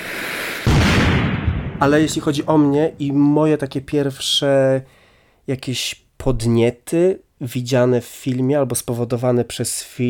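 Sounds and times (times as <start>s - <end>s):
loud explosion: 0.6s - 3.0s
heavy roar of rumbling debris: 0.7s - 3.1s
speech: 1.8s - 10.0s.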